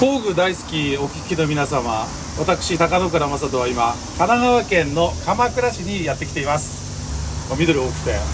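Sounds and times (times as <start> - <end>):
speech: 0.0 - 6.9, 7.5 - 8.3
cicadas chirping outdoors: 0.0 - 8.3.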